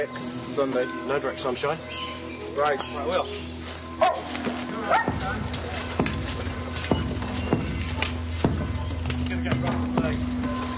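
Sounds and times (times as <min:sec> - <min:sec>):
speech: 0:00.0 - 0:05.9, 0:09.3 - 0:10.4
several dogs barking and yipping: 0:01.8 - 0:09.2.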